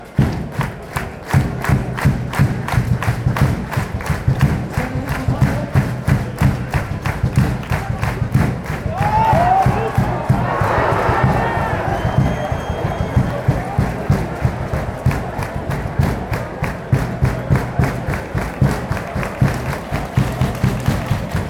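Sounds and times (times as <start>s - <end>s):
drumming: 0.0s - 21.4s
people clapping: 0.0s - 21.4s
fans chanting: 8.9s - 20.4s.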